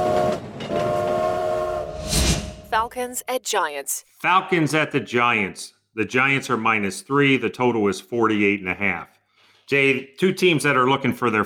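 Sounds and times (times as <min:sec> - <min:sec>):
loud sustained train whistle: 0:00.0 - 0:02.2
rumbling railway noise: 0:00.0 - 0:02.8
speech: 0:02.7 - 0:11.4.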